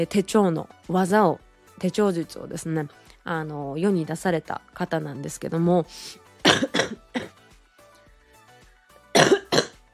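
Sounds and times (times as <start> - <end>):
speech: 0.0 - 7.0
person coughing from a cold: 6.4 - 7.4, 9.2 - 9.8.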